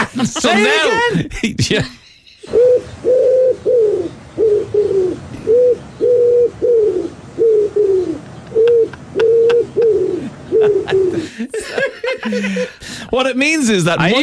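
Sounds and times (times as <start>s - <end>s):
laughter: 0.0s - 2.1s, 8.1s - 14.2s
speech: 0.2s - 2.9s, 13.1s - 14.2s
pigeon cooing: 1.9s - 13.0s.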